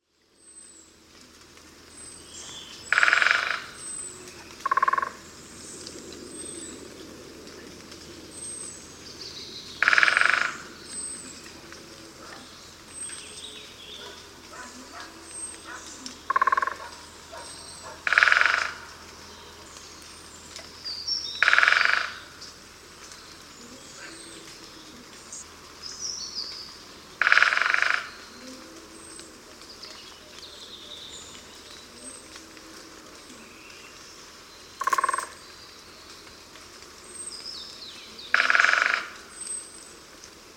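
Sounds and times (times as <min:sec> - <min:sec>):
Dendrocopos major great spotted woodpecker singing: 0:02.3 - 0:05.4, 0:09.4 - 0:32.3, 0:33.9 - 0:36.2, 0:37.1 - 0:39.7.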